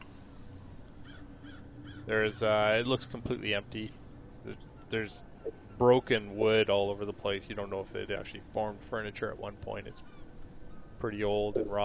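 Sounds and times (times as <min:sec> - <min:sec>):
steady low rumble: 0:00.0 - 0:11.8
crow cawing inside an old derelict building: 0:01.0 - 0:02.1, 0:10.0 - 0:11.0
speech: 0:02.1 - 0:10.2, 0:11.0 - 0:11.8.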